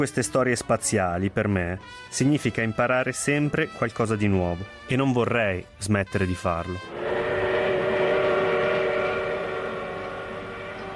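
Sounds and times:
speech: 0:00.0 - 0:07.0
sustained train whistle announcing departure: 0:06.8 - 0:10.9.

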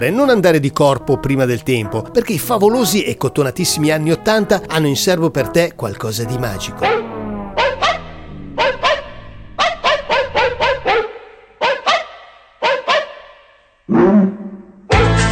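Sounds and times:
speech: 0:00.0 - 0:07.1
synthesized pitched dog barks played on a keyboard: 0:06.3 - 0:15.2
broader noisy hits: 0:06.6 - 0:11.4.

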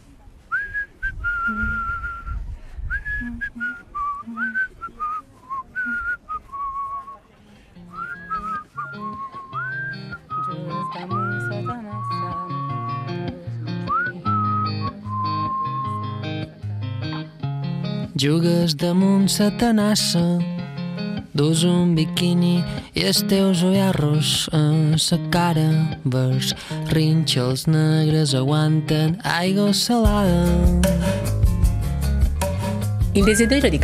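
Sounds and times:
person whistling a bouncy song melody: 0:00.5 - 0:07.2, 0:07.9 - 0:13.2, 0:13.9 - 0:16.1, 0:33.2 - 0:33.8
strummed instrumental accompaniment: 0:07.8 - 0:27.2, 0:30.0 - 0:33.8
speech: 0:18.2 - 0:20.5, 0:21.4 - 0:31.3, 0:33.2 - 0:33.8.

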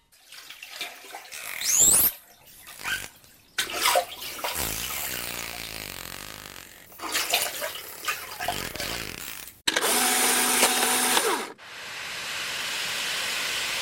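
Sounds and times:
short bursts of mechanical noise: 0:01.3 - 0:11.3
vacuum pump running with a hissing roar: 0:08.5 - 0:13.7.

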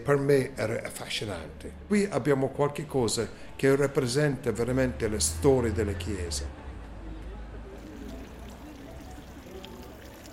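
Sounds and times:
speech: 0:00.0 - 0:06.6
faint voices murmuring: 0:06.0 - 0:10.3
fountain water trickling and splashing in a courtyard: 0:07.8 - 0:10.3.

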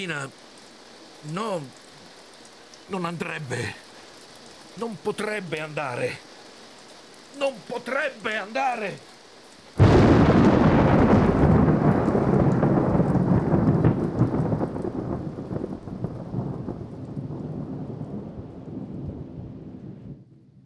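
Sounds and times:
speech: 0:00.0 - 0:00.6, 0:01.2 - 0:01.8, 0:02.9 - 0:03.8, 0:04.8 - 0:06.3, 0:07.4 - 0:09.1
heavy rain: 0:00.0 - 0:20.6
rolling thunder rumble: 0:09.8 - 0:20.6.

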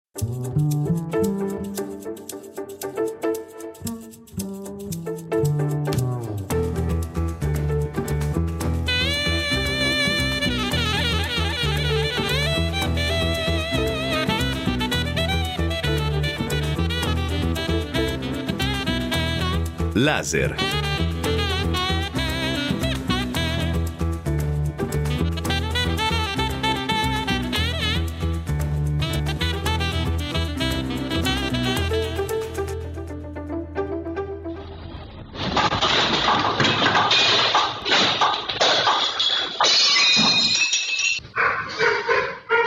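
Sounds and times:
speech: 0:00.2 - 0:00.6, 0:20.0 - 0:20.7
music: 0:00.2 - 0:35.6
dishes clattering and shattering in an earthquake tremor: 0:35.4 - 0:41.2
dog barking: 0:41.3 - 0:42.6.

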